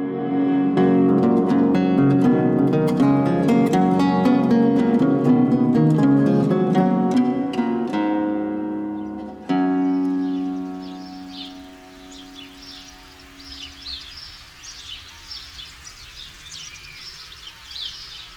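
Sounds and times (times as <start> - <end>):
resonant musical tone: 0.0 - 14.4
house sparrows chirping: 8.4 - 18.3.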